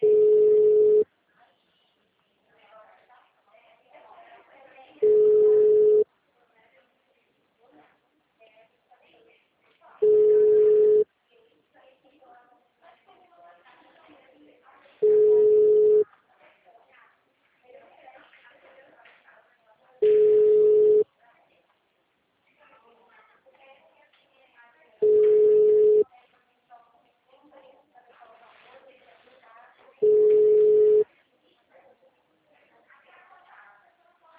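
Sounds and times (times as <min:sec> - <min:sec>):
telephone ringback tone while a call connects: 0:00.0 - 0:01.0, 0:05.0 - 0:06.0, 0:10.0 - 0:11.0, 0:15.0 - 0:16.0, 0:20.0 - 0:21.0, 0:25.0 - 0:26.0, 0:30.0 - 0:31.0
faint low noise: 0:00.0 - 0:34.3.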